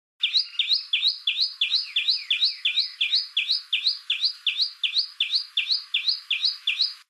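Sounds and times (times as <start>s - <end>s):
Tailorbird call with sharp chirps: 0.2s - 7.0s.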